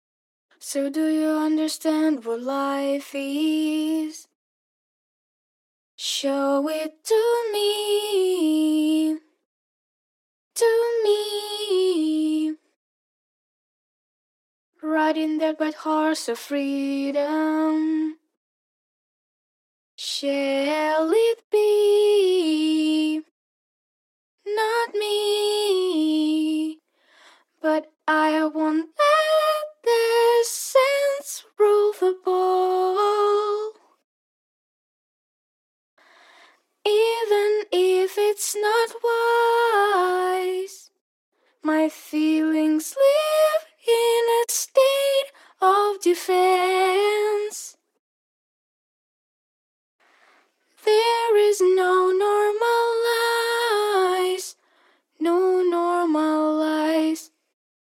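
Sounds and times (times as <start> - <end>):
a cappella pop vocals in E minor: 0.5 - 4.4, 6.0 - 9.4, 10.6 - 12.8, 14.8 - 18.4, 20.0 - 23.3, 24.4 - 34.0, 36.2 - 41.0, 41.6 - 47.8, 50.2 - 57.6.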